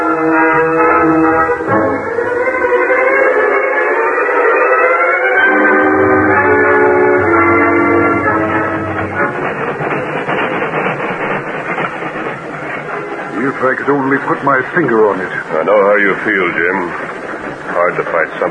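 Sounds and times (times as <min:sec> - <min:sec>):
steam whistle with chord-like tone: 0:00.0 - 0:09.4
engine and caboose chugging and clattering on new rails: 0:00.0 - 0:18.4
speech: 0:14.2 - 0:17.2, 0:17.8 - 0:18.4.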